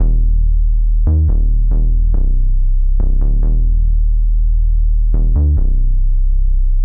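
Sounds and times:
percussive bass: 0.0s - 6.8s.

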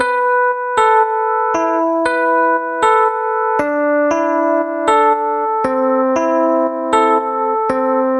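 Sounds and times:
80s classic melody in A minor: 0.0s - 8.1s.

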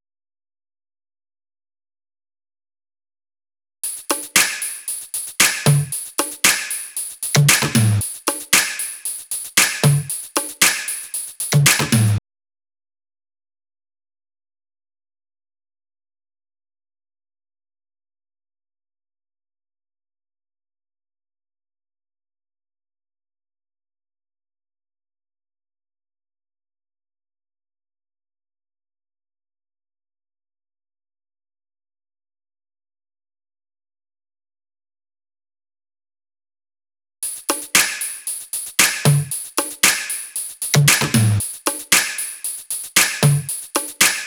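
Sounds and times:
top drum loop: 3.8s - 12.2s, 37.2s - 44.2s.

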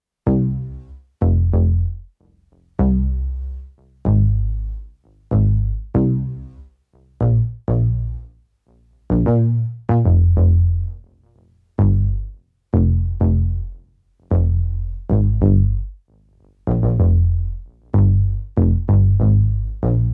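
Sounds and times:
tense overdriven tape bass: 0.3s - 8.3s, 9.1s - 20.1s.

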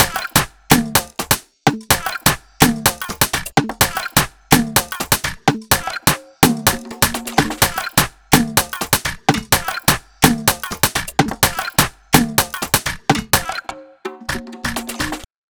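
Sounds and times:
126 BPM music loop: 0.0s - 15.3s.

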